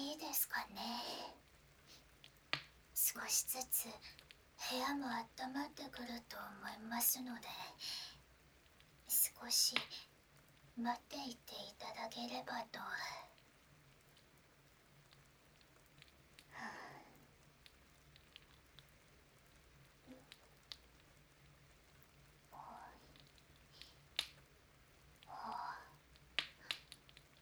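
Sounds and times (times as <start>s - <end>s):
sharp drips or taps: 0.0s - 6.4s, 7.0s - 27.4s
steady rain heard from indoors: 0.0s - 27.4s
speech: 3.1s - 8.0s, 9.1s - 10.1s, 10.8s - 13.3s, 16.6s - 16.8s.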